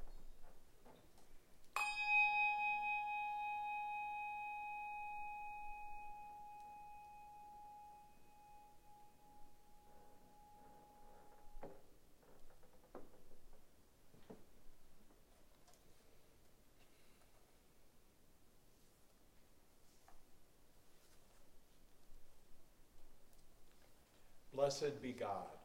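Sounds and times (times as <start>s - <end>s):
church bell ringing before a Sunday morning church service: 1.8s - 11.6s
speech: 24.6s - 25.6s.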